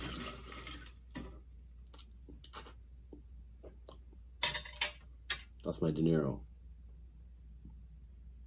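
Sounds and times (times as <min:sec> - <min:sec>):
iced tea pouring into a glass: 0:00.0 - 0:01.2
speech: 0:05.6 - 0:06.5.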